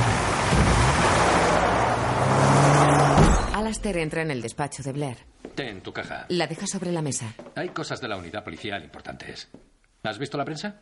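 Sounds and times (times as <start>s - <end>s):
Land Rover and Alfa Romeo engine and road noise pulling away from an estate: 0.0s - 3.7s
speech: 3.7s - 10.8s.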